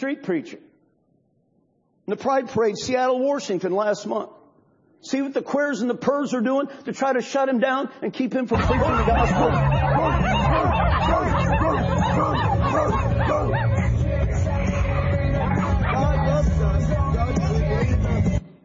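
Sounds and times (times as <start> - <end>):
speech: 0.0 - 0.7, 2.1 - 4.4, 5.0 - 11.3
crowd laughter: 8.5 - 14.3, 15.0 - 16.6
crowd of people barking and yipping like dogs: 8.6 - 17.5
crowd murmuring: 8.6 - 17.9.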